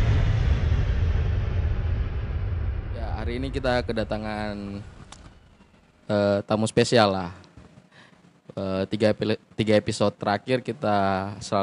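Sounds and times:
mechanical drone from a nearby repair workshop: 0:00.0 - 0:06.1
speech: 0:03.3 - 0:04.9, 0:06.1 - 0:07.4, 0:08.5 - 0:11.6.

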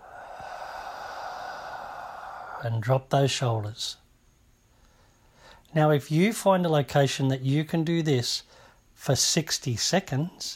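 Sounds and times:
exhale through the mouth during a breathing exercise: 0:00.0 - 0:02.8
speech: 0:02.6 - 0:04.0, 0:05.7 - 0:10.5.

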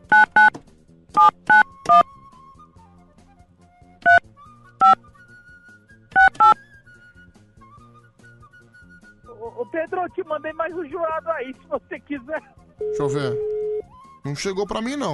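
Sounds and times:
touch-tone telephone keypad beeps dialing a number: 0:00.1 - 0:00.5, 0:01.2 - 0:02.0, 0:04.0 - 0:04.2, 0:06.2 - 0:06.6, 0:12.8 - 0:13.9
speech: 0:09.9 - 0:13.6, 0:14.2 - 0:15.1.

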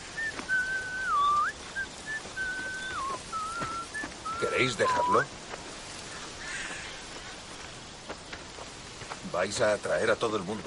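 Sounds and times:
man whistling a tune while walking through a forest: 0:00.1 - 0:05.3
speech: 0:04.5 - 0:05.4, 0:09.4 - 0:10.6.

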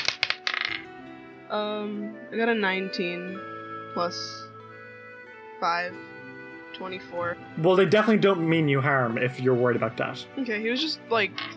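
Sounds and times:
dice tumbling across a hard tabletop: 0:00.0 - 0:00.8
speech: 0:01.5 - 0:04.4, 0:05.6 - 0:06.2, 0:06.8 - 0:11.5.

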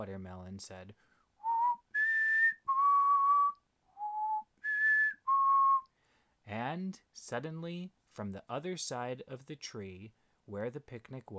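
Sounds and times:
speech: 0:00.0 - 0:01.2, 0:06.5 - 0:11.3
person whistling a short call: 0:01.4 - 0:05.9.

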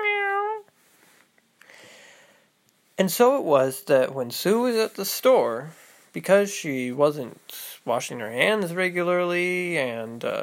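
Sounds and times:
cat meowing: 0:00.0 - 0:00.6
faint rustle: 0:00.0 - 0:01.6
speech: 0:03.0 - 0:10.4.

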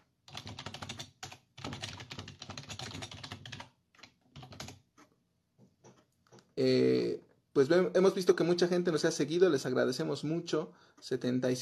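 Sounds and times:
fingers typing a message on a computer keyboard: 0:00.3 - 0:04.9
speech: 0:06.6 - 0:11.5.

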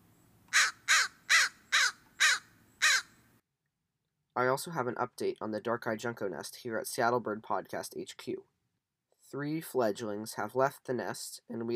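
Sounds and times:
American crow cawing: 0:00.5 - 0:03.2
speech: 0:04.4 - 0:08.5, 0:09.3 - 0:11.7.

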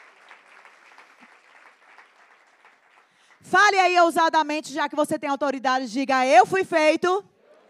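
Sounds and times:
audience applauding: 0:00.0 - 0:03.4
speech: 0:03.4 - 0:07.3.

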